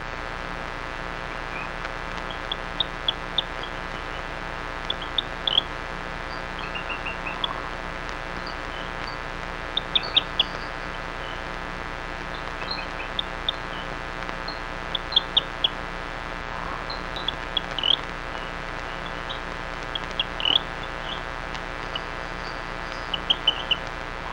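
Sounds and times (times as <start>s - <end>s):
background hiss: 0.0s - 24.3s
Rio Grande chirping frog chirping in Texas: 1.2s - 24.3s
low rumble: 5.7s - 24.3s.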